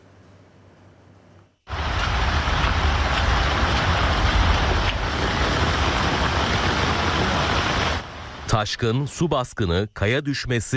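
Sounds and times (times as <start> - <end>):
truck-like engine: 1.7 - 8.5
heavy rain: 1.7 - 8.7
low rumble of traffic: 1.7 - 9.1
speech: 8.6 - 10.7.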